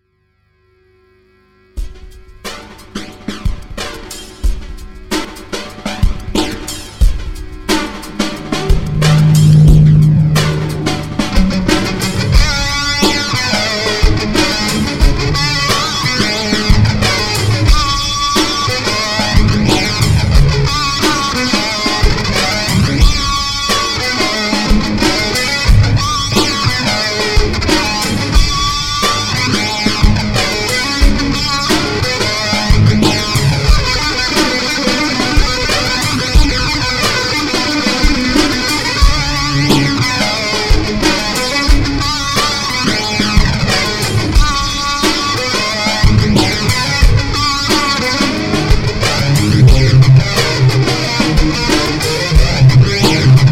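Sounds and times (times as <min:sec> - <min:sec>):
music jam with flanger effect: 0:01.8 - 0:53.4.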